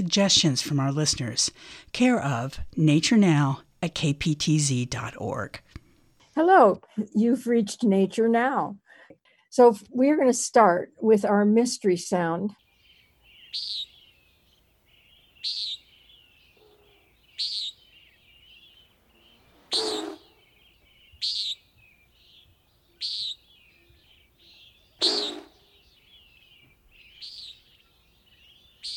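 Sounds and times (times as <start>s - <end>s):
speech: 0.0s - 5.8s, 6.4s - 8.8s, 9.5s - 12.6s, 13.5s - 13.9s, 15.4s - 15.8s
bird giving short high chirping calls: 12.6s - 28.9s.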